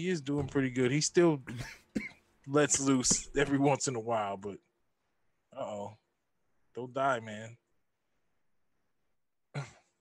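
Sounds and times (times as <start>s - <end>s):
speech: 0.0s - 1.8s, 2.5s - 4.7s, 6.8s - 7.6s, 9.6s - 9.8s
person coughing: 1.5s - 2.3s, 9.5s - 9.9s.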